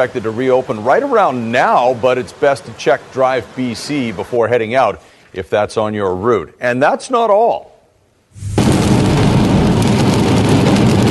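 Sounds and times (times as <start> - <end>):
heavy rain pounding down: 0.0 - 5.2, 8.4 - 11.1
speech: 0.0 - 7.7, 8.4 - 8.6.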